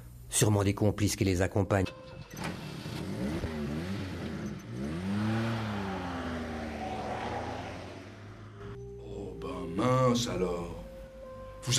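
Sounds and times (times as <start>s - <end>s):
speech: 0.4s - 2.6s, 10.1s - 10.8s
van engine revving as the van speeds away: 2.4s - 8.8s.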